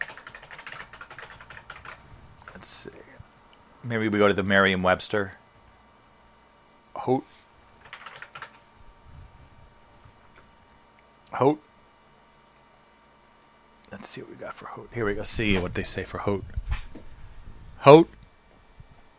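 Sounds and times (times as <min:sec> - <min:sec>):
clicky typing on a computer keyboard: 0:00.0 - 0:02.6, 0:07.8 - 0:08.6, 0:12.3 - 0:12.7
speech: 0:02.6 - 0:03.2, 0:03.8 - 0:05.4, 0:07.1 - 0:07.4, 0:11.4 - 0:11.7, 0:14.0 - 0:16.8, 0:17.8 - 0:18.2.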